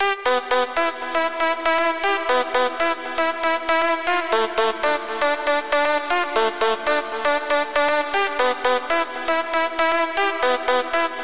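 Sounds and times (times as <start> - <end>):
key lead loop: 0.2 - 11.2.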